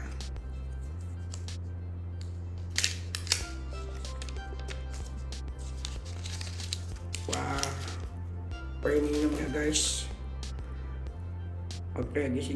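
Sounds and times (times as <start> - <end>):
steady low hum: 0.0 - 12.0
packaging rustling and crinkling as a battery pack box is opened: 5.6 - 8.0
speech: 9.5 - 10.0, 12.2 - 12.5.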